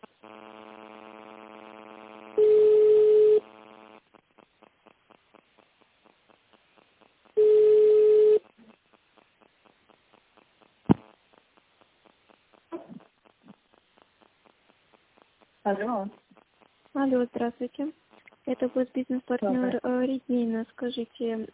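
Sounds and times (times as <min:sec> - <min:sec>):
long telephone line tone during call transfer: 0:02.4 - 0:03.4, 0:07.4 - 0:08.4
short telephone line beeps during call transfer: 0:07.4 - 0:08.4
speech: 0:15.7 - 0:16.2, 0:17.0 - 0:21.5.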